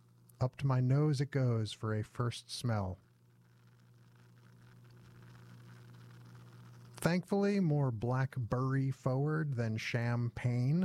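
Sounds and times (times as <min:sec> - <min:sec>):
faint low hum: 0:00.0 - 0:10.8
speech: 0:00.4 - 0:03.0, 0:07.0 - 0:10.8
carbonated drink bubbles fizzing: 0:03.3 - 0:07.0.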